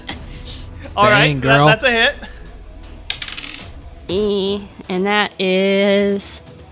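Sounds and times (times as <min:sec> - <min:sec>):
speech: 0:01.0 - 0:02.4, 0:04.1 - 0:06.4
dice tumbling and rattling across a hard table surface: 0:03.1 - 0:03.6.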